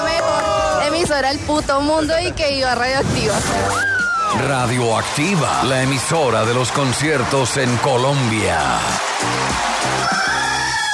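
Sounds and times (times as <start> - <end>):
speech: 1.1 - 10.2
rooster crowing: 10.0 - 10.9.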